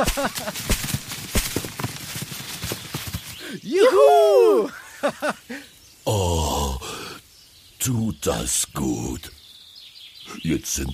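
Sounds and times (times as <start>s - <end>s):
laughter: 0.0s - 0.7s, 3.9s - 5.6s
speech: 0.0s - 0.9s, 3.7s - 6.3s, 7.8s - 9.4s, 10.4s - 10.9s
several people stomping heavy feet: 0.0s - 2.2s
voices calling out: 3.4s - 9.4s, 10.2s - 10.9s.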